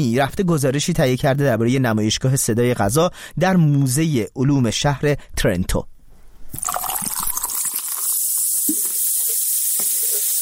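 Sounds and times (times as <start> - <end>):
speech: 0.0 - 5.9
carbonated soda drink fizzing: 6.5 - 10.4
slight liquid splash: 6.5 - 10.4.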